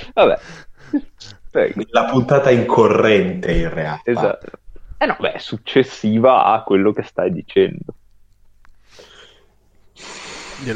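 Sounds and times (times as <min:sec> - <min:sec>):
speech: 0:00.2 - 0:08.0, 0:10.0 - 0:10.7
loud nose sniff: 0:08.9 - 0:09.4, 0:10.0 - 0:10.7.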